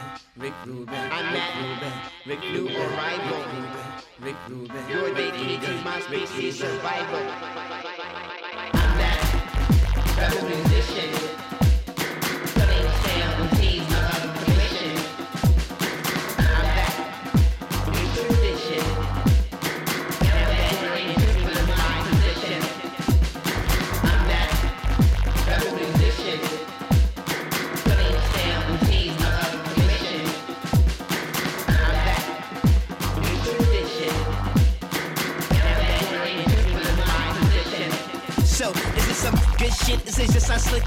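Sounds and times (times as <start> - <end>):
heavy bass-driven swinging hip-hop dance track: 0.0 - 40.8
speech: 0.4 - 8.2, 38.7 - 40.8.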